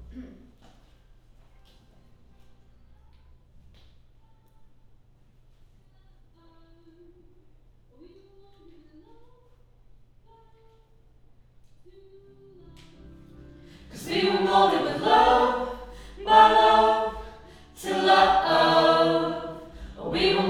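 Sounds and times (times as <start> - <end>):
choir singing: 13.6 - 20.4.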